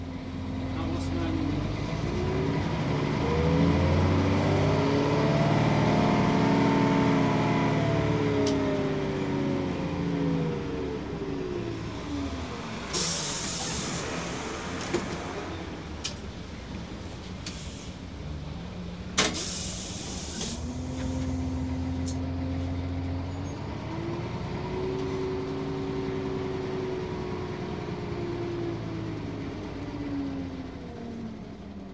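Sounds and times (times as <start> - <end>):
city bus engine rumbling at a stop in Barcelona: 0.0 - 31.9
city bus air brakes hissing: 12.9 - 14.4, 17.4 - 18.0, 19.2 - 21.4.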